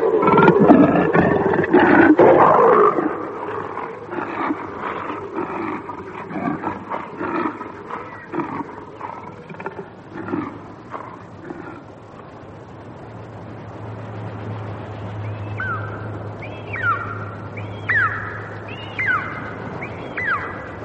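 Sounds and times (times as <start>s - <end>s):
low rumble: 0.0s - 20.8s
sea eagle yelping call: 15.6s - 20.8s.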